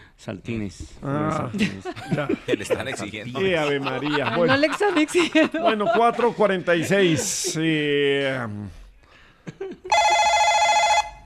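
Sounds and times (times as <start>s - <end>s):
speech: 0.2s - 8.8s
laughter: 1.4s - 7.8s, 9.4s - 9.9s
telephone ringing with an incoming call: 9.9s - 11.2s.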